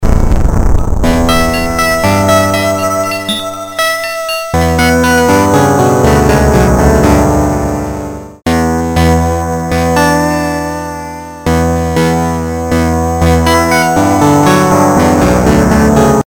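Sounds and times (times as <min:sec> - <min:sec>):
lofi instrumental melody: 0:00.0 - 0:16.2.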